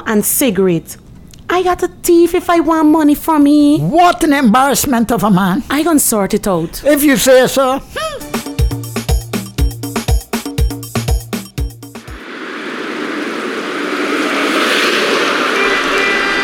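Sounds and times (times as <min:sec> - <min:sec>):
speech: 0:00.1 - 0:01.0, 0:01.6 - 0:08.2
rhythmic pulsing music: 0:08.2 - 0:16.2
loud road noise of a car moving through traffic: 0:12.1 - 0:16.4.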